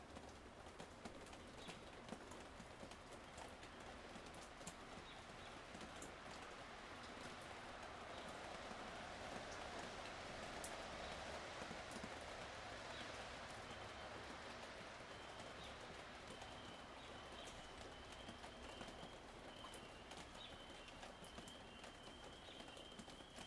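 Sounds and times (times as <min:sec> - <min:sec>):
raindrops falling from a roof: 0:00.0 - 0:23.4
birds singing: 0:15.0 - 0:23.4.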